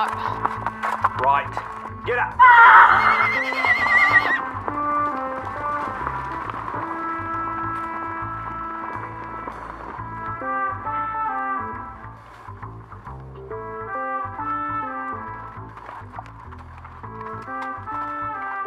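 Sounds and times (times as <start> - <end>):
hooves of two trotting horses clip-clopping: 0.0 - 18.6
speech: 1.3 - 4.2
horse whinnying: 2.4 - 5.4.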